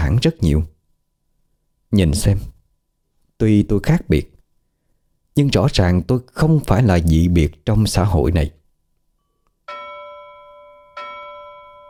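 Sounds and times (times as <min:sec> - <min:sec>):
speech: 0:00.1 - 0:00.7, 0:01.9 - 0:02.5, 0:03.4 - 0:04.3, 0:05.4 - 0:08.6
bell struck with bright clear ringing tone: 0:09.2 - 0:11.8.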